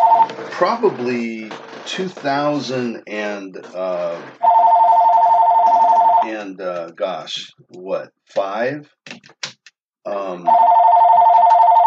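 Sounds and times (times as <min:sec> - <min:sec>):
telephone ringing: 0:00.0 - 0:00.4, 0:04.4 - 0:06.4, 0:10.5 - 0:11.8
speech: 0:00.6 - 0:04.5, 0:06.2 - 0:09.2, 0:10.0 - 0:10.8.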